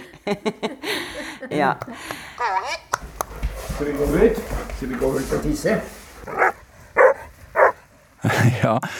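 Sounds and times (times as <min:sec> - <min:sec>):
laughter: 0:00.0 - 0:02.4, 0:08.2 - 0:08.9
speech: 0:00.2 - 0:02.8, 0:03.8 - 0:06.4, 0:08.4 - 0:08.9
briard barking: 0:06.3 - 0:07.8.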